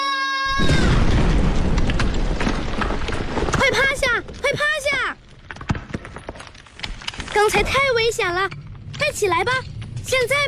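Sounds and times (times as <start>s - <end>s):
blasting explosion at a construction site: 0.5s - 4.4s
speech: 0.6s - 0.9s, 7.4s - 10.4s
roaring rumble with crackles from the explosion: 0.6s - 10.4s.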